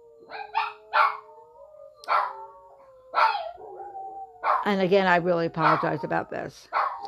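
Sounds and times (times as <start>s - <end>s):
siren wailing: 0.0s - 6.4s
dog barking: 0.3s - 1.2s, 2.1s - 2.4s, 3.2s - 3.6s, 4.4s - 4.7s, 5.6s - 6.0s, 6.7s - 7.0s
speech: 4.6s - 6.8s.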